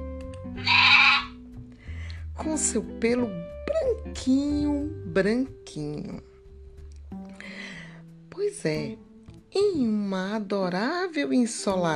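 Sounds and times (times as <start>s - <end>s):
little sheep bleating: 0.6s - 1.4s
speech: 2.4s - 6.3s, 8.5s - 11.9s.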